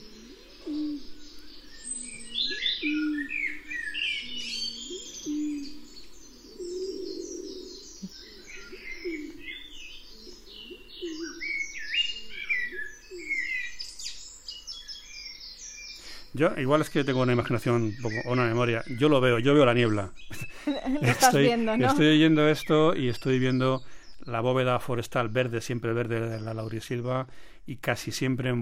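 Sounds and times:
rabiche pigeon cooing in low repeated phrases: 0.0s - 13.8s
La Gomera blackbirds singing varied fluting songs: 0.0s - 28.6s
speech: 16.4s - 28.6s
laughter: 20.3s - 22.0s.

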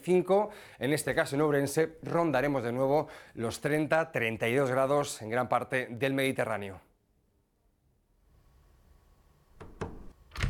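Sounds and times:
speech: 0.0s - 6.9s
faint room hum: 0.0s - 10.4s
door shutting with a thud: 9.6s - 10.4s
knocking clicks: 9.6s - 10.4s.

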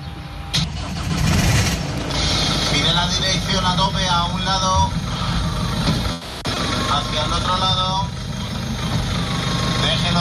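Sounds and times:
car engine starting and idling: 0.0s - 10.1s
speech: 3.0s - 5.3s, 7.0s - 8.2s, 9.8s - 10.1s.

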